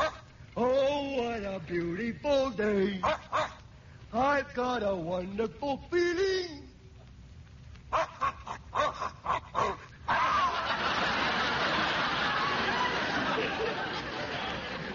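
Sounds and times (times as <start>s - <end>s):
dogs barking: 0.0s - 0.3s, 3.0s - 3.7s, 7.9s - 9.9s
speech: 1.6s - 3.2s, 4.1s - 6.3s
laughter: 10.1s - 14.9s.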